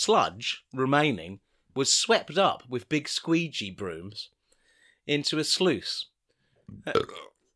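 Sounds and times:
speech: 0.0 - 4.4, 5.1 - 6.1, 6.7 - 7.4
throaty burp: 6.7 - 7.4.

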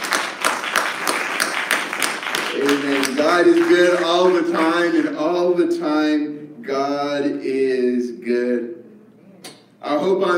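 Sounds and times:
crowd of people clapping hands in a steady rhythm: 0.0 - 5.3
speech: 2.8 - 8.7, 9.9 - 10.3.

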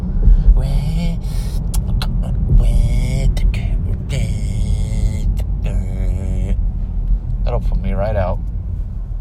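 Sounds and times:
low-pitched rumble inside a moving car: 0.0 - 9.1.

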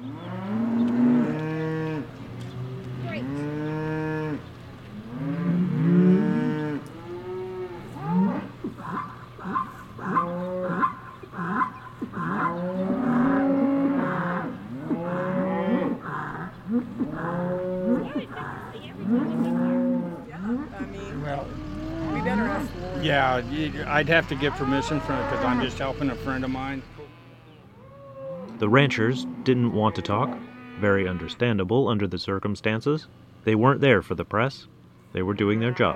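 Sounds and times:
young cows mooing in a field on a cattle ranch: 0.0 - 31.5, 35.4 - 35.9
speech: 23.3 - 27.0, 28.6 - 35.9.

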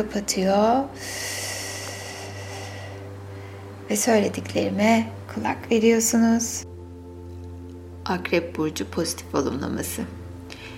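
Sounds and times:
speech: 0.0 - 1.4, 3.9 - 6.7, 8.0 - 10.2
faint steady hum: 0.0 - 10.7
long deep inhale: 1.0 - 3.9, 10.4 - 10.7.

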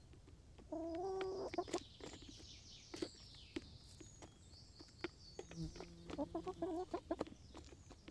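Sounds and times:
chicken giving drawn-out nasal call in a henhouse: 0.7 - 1.8, 5.7 - 7.3.

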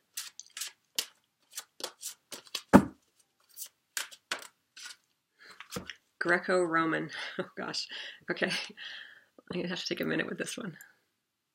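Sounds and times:
tarot cards being shuffled and handled before one is drawn: 0.1 - 5.0, 5.6 - 5.9
heavy thump: 2.7 - 3.0
speech: 6.2 - 10.9.

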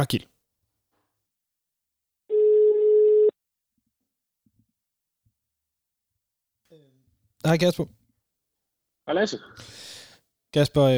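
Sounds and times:
speech: 0.0 - 0.3, 7.4 - 8.0, 9.1 - 10.9
ringback tone from an outgoing phone call: 2.3 - 3.3.

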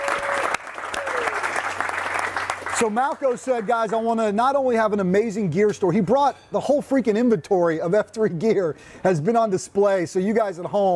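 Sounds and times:
crowd applause: 0.0 - 4.1
speech: 2.8 - 10.9.

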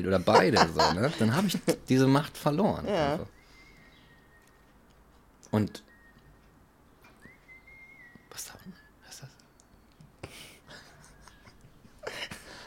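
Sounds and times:
laughter: 0.0 - 1.9, 10.3 - 12.5
speech: 0.0 - 3.4, 5.5 - 5.9, 8.4 - 8.7
faint whistled tune: 3.3 - 4.8, 5.5 - 10.1.

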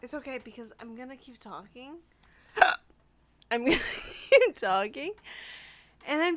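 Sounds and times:
speech: 0.0 - 2.8, 3.5 - 6.3
sharp short hiccup: 2.6 - 2.8.

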